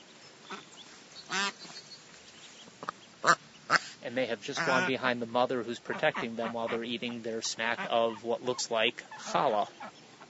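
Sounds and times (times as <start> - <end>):
soft hiss: 0.0 - 10.2
thinner higher call of a yellow-flecked black duckling: 0.4 - 10.2
black-and-white mother duck quacking while eating outdoors: 1.3 - 1.7, 2.8 - 10.2
speech: 4.1 - 10.0.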